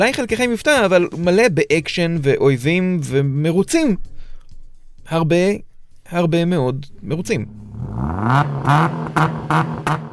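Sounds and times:
speech: 0.0s - 4.1s, 5.1s - 10.1s
car engine revving and accelerating: 7.3s - 10.1s.

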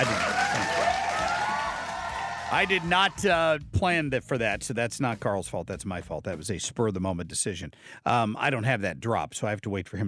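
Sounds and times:
crowd applause: 0.0s - 3.4s
faint whooping cheer: 0.0s - 3.4s
speech: 2.5s - 10.0s.

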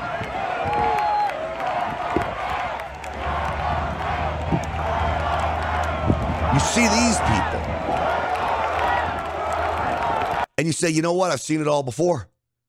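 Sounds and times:
large rally crowd cheering and shouting: 0.0s - 10.5s
people whooping in a crowd: 0.0s - 10.5s
speech: 6.6s - 7.7s, 10.6s - 12.3s.

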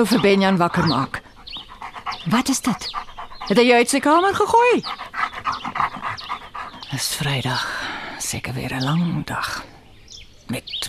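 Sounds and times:
speech: 0.0s - 1.2s, 2.2s - 5.0s, 6.9s - 9.7s, 10.5s - 10.8s
dogs barking: 0.0s - 7.3s.

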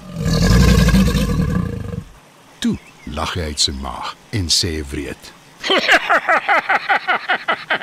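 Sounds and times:
huge crocodile roaring on rocks beside a river: 0.0s - 2.1s
speech: 2.6s - 7.8s
laughter: 5.6s - 7.8s.

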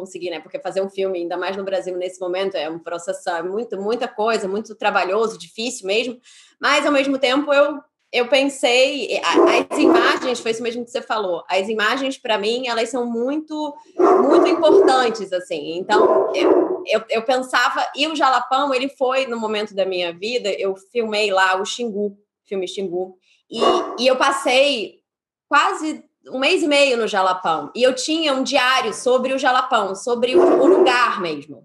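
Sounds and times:
speech: 0.0s - 31.6s
pet dog barking: 9.3s - 10.4s, 14.0s - 15.2s, 15.9s - 16.9s, 23.6s - 24.1s, 30.3s - 31.1s.

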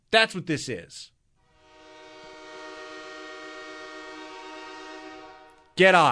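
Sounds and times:
speech: 0.1s - 1.2s, 5.8s - 6.0s
train horn sound effect blaring: 1.4s - 5.8s.

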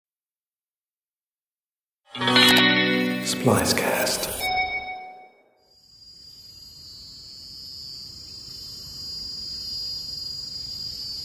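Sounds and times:
speech: 2.1s - 4.4s
wind chime tone: 2.2s - 5.6s
high-pitched insect trill outdoors: 5.7s - 11.2s.

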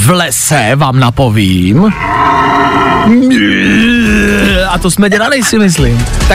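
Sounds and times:
speech: 0.1s - 6.3s
red deer stag rutting roar: 1.9s - 4.6s.

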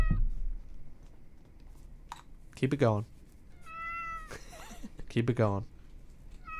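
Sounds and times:
speech: 2.6s - 3.2s, 5.2s - 5.7s
cat meowing: 3.6s - 4.4s, 6.4s - 6.5s.

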